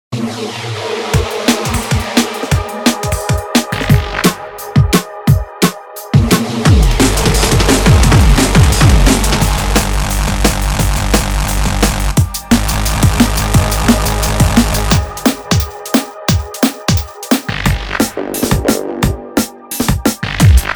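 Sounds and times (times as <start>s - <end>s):
neurofunk drum breaks: 1.1s - 20.7s.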